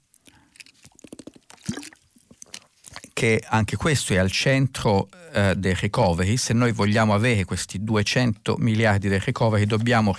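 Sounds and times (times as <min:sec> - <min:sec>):
person sipping water: 0:00.0 - 0:03.2
wet mouth clicks: 0:00.1 - 0:03.2
soft swallowing: 0:00.2 - 0:03.2
gulp: 0:00.9 - 0:03.2
speech: 0:03.2 - 0:10.1.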